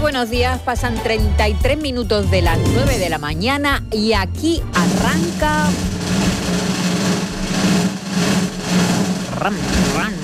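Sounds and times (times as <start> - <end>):
speech: 0.1 - 6.6, 9.4 - 10.2
motorcycle engine running outdoors: 4.7 - 10.2.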